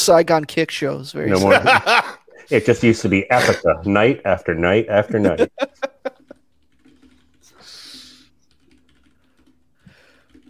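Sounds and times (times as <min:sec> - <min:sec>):
speech: 0:00.0 - 0:06.2
laughter: 0:01.4 - 0:02.5, 0:03.2 - 0:03.8, 0:05.1 - 0:06.4
typing on a computer keyboard: 0:06.2 - 0:07.6, 0:08.4 - 0:10.4.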